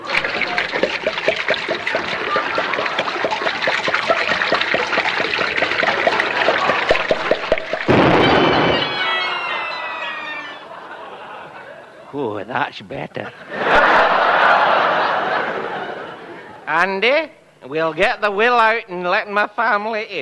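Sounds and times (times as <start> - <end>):
gulping whiskey: 0.0 - 7.9
whiskey pouring in rapid glugs: 0.0 - 9.2
laughter: 1.9 - 4.5, 5.7 - 7.1, 8.2 - 12.3, 13.1 - 16.7
speech: 12.6 - 13.6, 16.7 - 20.2.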